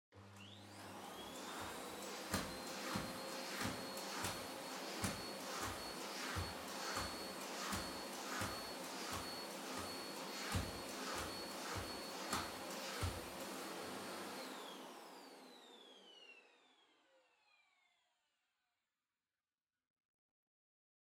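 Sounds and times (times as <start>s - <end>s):
distant soft high vacuum cleaner vacuuming a floor: 0.2s - 16.9s.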